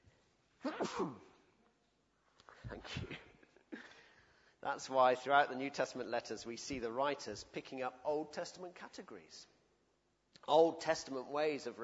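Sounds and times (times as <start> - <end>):
person sneezing: 0.6 - 1.4
speech: 0.8 - 1.3, 2.7 - 3.2, 4.6 - 9.5, 10.4 - 11.8.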